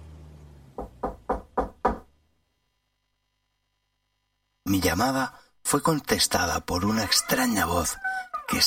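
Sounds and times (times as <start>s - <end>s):
soft knocks on a wooden door: 0.8s - 2.1s
speech: 4.7s - 8.6s.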